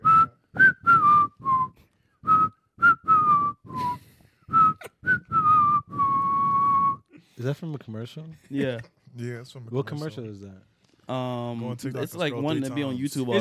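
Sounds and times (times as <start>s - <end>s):
person whistling a short bouncy melody: 0.0s - 7.1s
speech: 7.5s - 13.3s.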